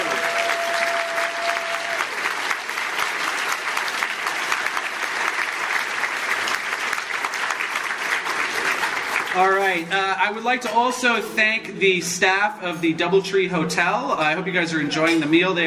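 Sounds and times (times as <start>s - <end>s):
room full of people applauding: 0.0s - 9.8s
speech: 9.4s - 15.6s.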